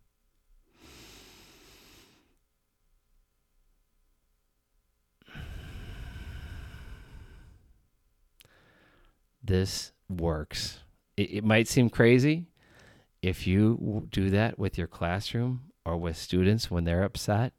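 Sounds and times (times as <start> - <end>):
slow breaths in a triangle breathing exercise: 0.7 - 2.4, 5.2 - 9.2, 12.6 - 13.2
speech: 9.5 - 12.5, 13.2 - 17.5.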